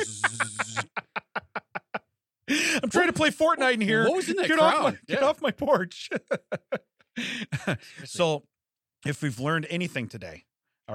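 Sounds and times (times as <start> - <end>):
voice imitating speaker interference buzz: 0.0 - 1.0
laughter: 0.0 - 8.0
speech: 2.5 - 10.9.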